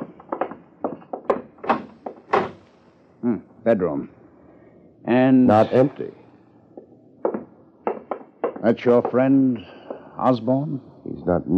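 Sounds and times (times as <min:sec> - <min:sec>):
door being opened: 0:00.0 - 0:03.0, 0:06.8 - 0:10.0
speech: 0:03.2 - 0:04.2, 0:05.1 - 0:06.2, 0:08.6 - 0:11.5.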